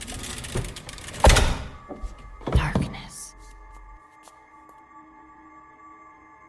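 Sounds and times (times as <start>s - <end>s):
heavy steel door slamming shut: 0.3s - 3.0s.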